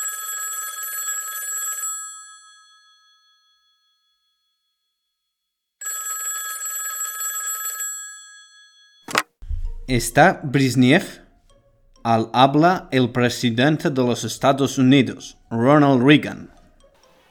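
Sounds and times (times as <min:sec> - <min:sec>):
old telephone bell ringing: 0:00.0 - 0:04.7, 0:05.8 - 0:09.1
speech: 0:09.9 - 0:11.2, 0:12.0 - 0:16.6.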